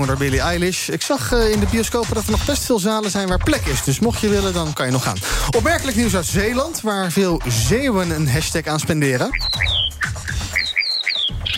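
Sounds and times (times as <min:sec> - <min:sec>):
speech: 0:00.0 - 0:09.6
common starling calls with whistles, squawky notes and chirps: 0:09.3 - 0:11.5.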